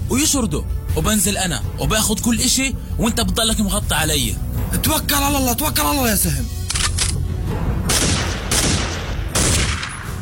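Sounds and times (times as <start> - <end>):
speech: 0.2 - 6.6
gunfire during an armed holdup: 7.9 - 10.1.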